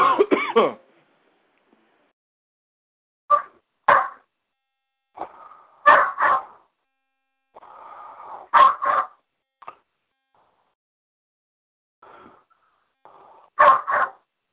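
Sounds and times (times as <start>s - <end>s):
dog barking in short sharp bursts: 3.3s - 4.2s, 5.2s - 6.6s, 8.4s - 9.2s, 13.6s - 14.2s.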